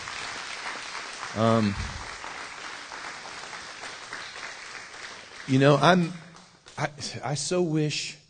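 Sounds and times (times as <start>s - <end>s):
crowd applause: 0.0s - 6.5s
speech: 1.4s - 2.0s, 5.5s - 6.2s, 6.8s - 8.2s.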